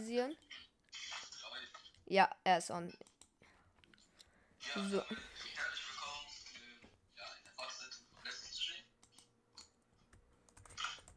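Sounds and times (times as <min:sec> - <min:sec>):
speech: 0:00.1 - 0:03.1, 0:04.6 - 0:05.8
typing a chat message on a computer keyboard: 0:09.0 - 0:11.1.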